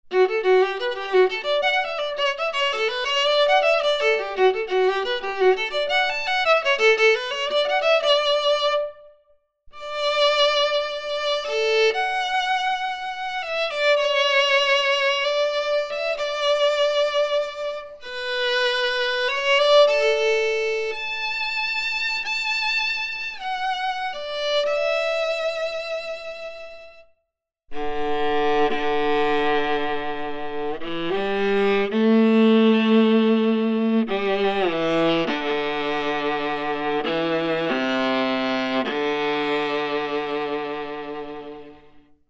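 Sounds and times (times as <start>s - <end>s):
viola: 0.0s - 27.1s, 27.7s - 42.2s.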